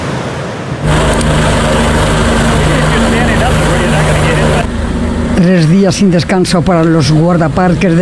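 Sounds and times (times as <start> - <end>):
rescue helicopter engine whine and rotor roar in Grand Canyon National Park: 0.0 - 5.3
speech: 5.4 - 8.0.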